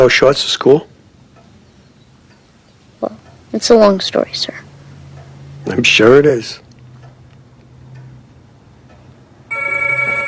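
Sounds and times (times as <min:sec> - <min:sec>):
speech: 0:00.0 - 0:00.9, 0:03.0 - 0:04.6, 0:05.7 - 0:06.6
telephone bell ringing: 0:09.5 - 0:10.2.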